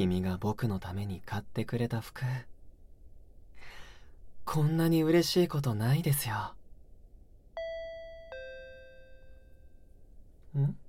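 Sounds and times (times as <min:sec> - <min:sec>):
speech: 0:00.0 - 0:02.5, 0:04.5 - 0:06.6, 0:10.5 - 0:10.8
two-tone intercom doorbell chiming: 0:07.6 - 0:09.7.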